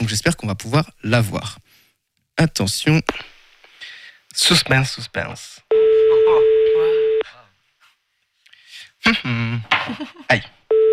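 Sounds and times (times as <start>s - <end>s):
speech: 0.0s - 1.6s, 2.4s - 3.3s, 4.4s - 6.6s, 9.0s - 10.6s
telephone tone after a number is dialled: 5.7s - 7.2s, 10.7s - 10.9s.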